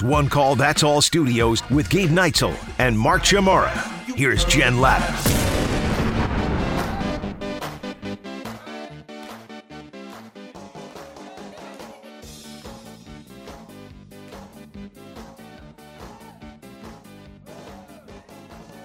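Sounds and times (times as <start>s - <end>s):
speech: 0.0s - 5.5s
loud rock song with full band: 1.8s - 8.2s
heavy booming drum hits: 5.2s - 8.0s.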